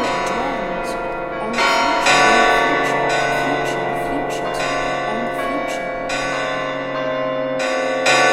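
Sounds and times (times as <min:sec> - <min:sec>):
loud alarm bells ringing: 0:00.0 - 0:08.3.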